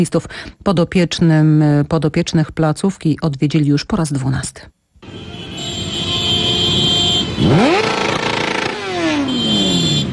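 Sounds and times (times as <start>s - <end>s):
speech: 0.0s - 5.4s, 7.4s - 8.0s
group of motorcycle engines roaring: 5.7s - 10.1s
motorcycle engine revving: 7.1s - 10.1s.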